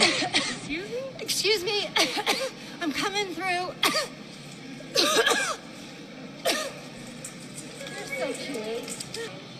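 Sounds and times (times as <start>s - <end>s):
woman coughing: 0.0s - 0.8s, 1.9s - 2.6s, 3.8s - 4.2s, 4.9s - 5.6s, 6.4s - 6.8s
voices murmuring in a noisy indoor space: 0.0s - 9.5s.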